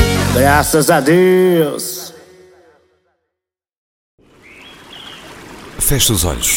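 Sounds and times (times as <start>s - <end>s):
speech: 0.4s - 1.9s, 5.8s - 6.5s
birdsong with high chirps and trills in the Amazon: 4.2s - 6.5s
dense hissing Amazon forest ambience: 4.2s - 6.5s.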